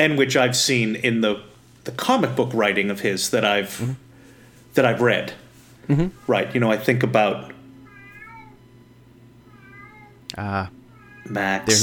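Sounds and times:
speech: 0.0s - 4.0s, 4.8s - 7.6s, 10.4s - 11.8s
steady low hum: 0.0s - 11.8s
cat meowing: 7.9s - 8.6s, 9.5s - 10.2s, 10.9s - 11.7s.

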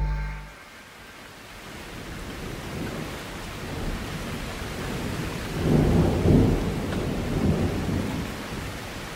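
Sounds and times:
steady rain: 0.4s - 9.1s
heavy rolling thunder: 2.0s - 8.8s.

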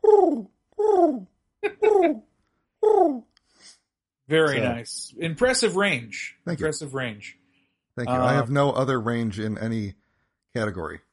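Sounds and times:
human voice imitating a pigeon cooing: 0.0s - 2.2s, 2.8s - 3.3s
speech: 4.3s - 7.4s, 8.0s - 11.1s.

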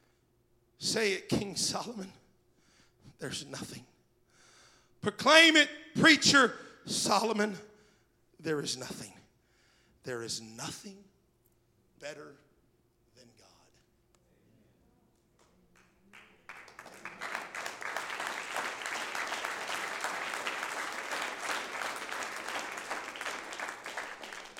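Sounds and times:
speech: 0.8s - 2.2s, 3.2s - 3.9s, 5.0s - 7.7s, 8.4s - 9.2s, 10.0s - 11.1s, 12.0s - 12.4s
crowd applauding: 15.4s - 24.5s.

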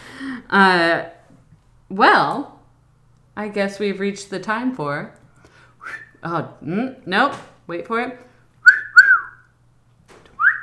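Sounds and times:
speech: 0.4s - 1.2s, 1.9s - 2.5s, 3.4s - 5.2s, 5.8s - 8.3s
person whistling a short bright tune: 5.8s - 6.2s, 8.6s - 9.5s, 10.4s - 10.6s.

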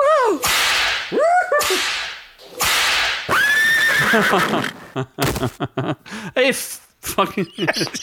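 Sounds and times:
whip cracks on a horse in a video game: 0.4s - 3.3s
horse loud shrill whinny in a video game: 3.3s - 5.0s
speech: 4.1s - 8.0s.

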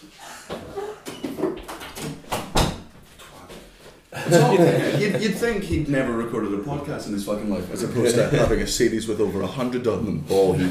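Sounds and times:
door being shut: 2.0s - 2.9s
laughter: 4.1s - 5.8s, 10.4s - 10.7s
speech: 4.3s - 10.7s.

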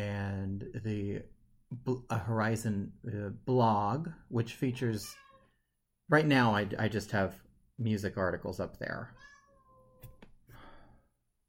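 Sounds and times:
speech: 0.8s - 5.2s, 6.1s - 9.3s
cat meowing: 5.0s - 5.6s, 9.2s - 10.2s.

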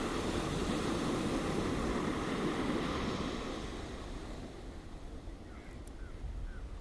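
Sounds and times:
ocean waves breaking and washing up on the shore: 0.0s - 5.4s.

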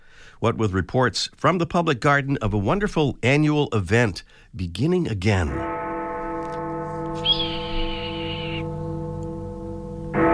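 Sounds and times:
speech: 0.4s - 5.8s
steady low sustained hum: 6.5s - 10.2s
red-tailed hawk scream: 7.2s - 8.7s.

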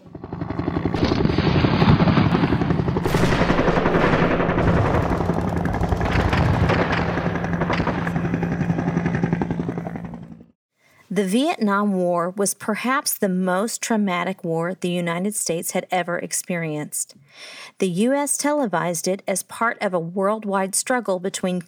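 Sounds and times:
helicopter rotors thumping in flight: 0.0s - 10.6s
bursts of automatic gunfire: 1.0s - 9.9s
speech: 11.2s - 21.6s.

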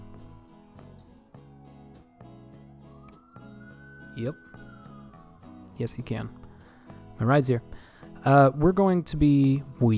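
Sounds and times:
car siren wailing outside: 1.4s - 6.0s
speech: 4.2s - 4.6s, 5.8s - 6.4s, 7.2s - 9.9s.

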